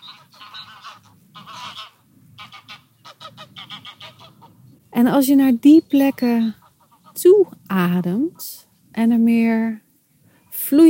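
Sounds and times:
flock of geese honking overhead as they fly over: 0.0s - 8.7s
speech: 5.0s - 6.6s, 7.7s - 9.8s, 10.7s - 10.8s.

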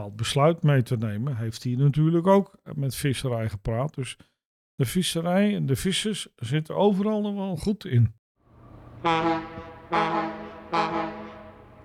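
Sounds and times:
speech: 0.0s - 8.2s, 9.0s - 11.2s
ship's horn blasts: 8.5s - 11.8s.

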